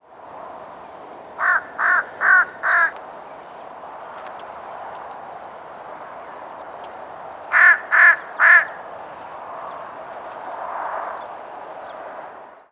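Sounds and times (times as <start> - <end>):
fish crow cawing: 1.4 - 3.0, 7.5 - 8.8.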